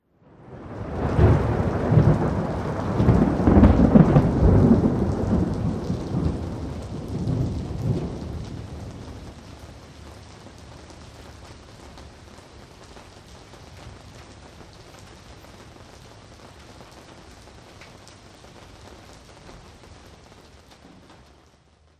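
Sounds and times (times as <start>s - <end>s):
thunder roll: 0.3s - 10.2s.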